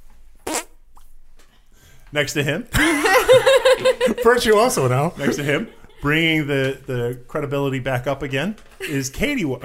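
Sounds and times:
raspy hand fart: 0.4s - 1.1s
speech: 2.1s - 9.6s
laughter: 2.8s - 6.4s.

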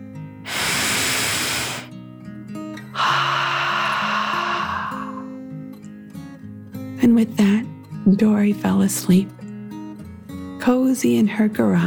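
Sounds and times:
deep dragon breath in: 0.5s - 1.9s, 2.9s - 5.4s
deep dragon hissing exhale: 0.5s - 1.9s, 2.9s - 5.3s
speech: 7.2s - 9.4s, 10.6s - 11.8s.

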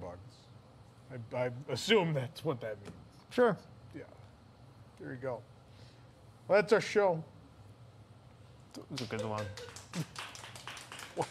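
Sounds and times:
speech: 1.1s - 4.2s, 5.0s - 5.5s, 6.5s - 7.4s, 8.7s - 10.3s
soft restrained hand claps: 8.8s - 11.2s.

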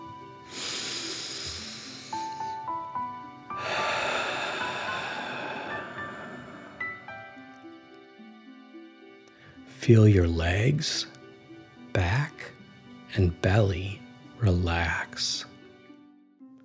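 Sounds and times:
soft tonal music: 0.0s - 16.6s
deep breaths in through nose and out: 0.5s - 2.6s, 3.5s - 7.2s
speech: 9.8s - 11.2s, 13.2s - 15.5s.

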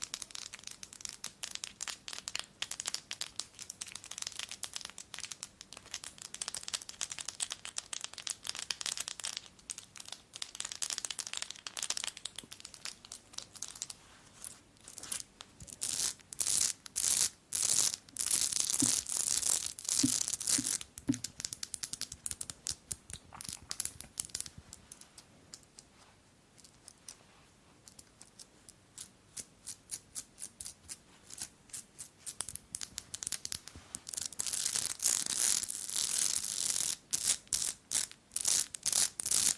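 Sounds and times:
fast tapping and scratching on jewels: 0.0s - 39.5s.

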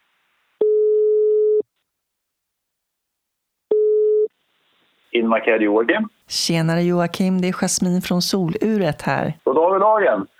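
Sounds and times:
phone outgoing ringback tone: 0.6s - 1.6s, 3.7s - 4.3s
speech: 5.2s - 10.3s.

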